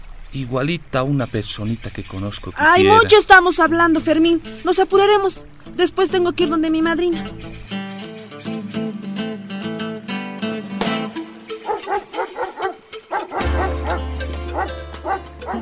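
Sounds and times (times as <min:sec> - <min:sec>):
speech: 0:00.3 - 0:07.8
soft steady music: 0:02.6 - 0:15.6
small dog yapping: 0:11.6 - 0:15.6.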